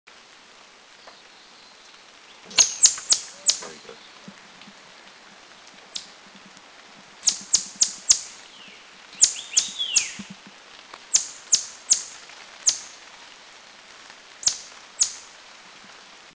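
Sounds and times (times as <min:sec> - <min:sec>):
Swinhoe's pheasant Lophura swinhoii in Yushan Taiwan: 0:01.0 - 0:04.3, 0:07.2 - 0:10.4, 0:11.1 - 0:13.0, 0:14.4 - 0:15.3.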